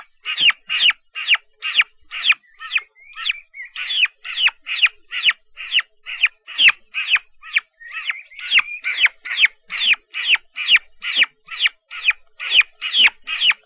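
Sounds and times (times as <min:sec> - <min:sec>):
turkey chicks peeping: 0:00.0 - 0:13.6.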